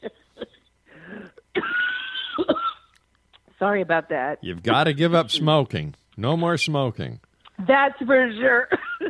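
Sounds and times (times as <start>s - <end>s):
person coughing harshly: 1.2s - 2.9s
speech: 3.6s - 8.8s.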